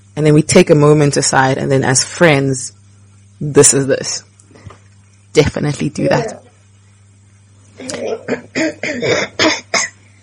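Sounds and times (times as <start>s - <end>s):
faint low hum: 0.0s - 10.2s
speech: 0.2s - 2.8s, 3.4s - 4.3s, 5.3s - 6.4s, 7.8s - 9.5s
person coughing harshly: 8.0s - 10.0s.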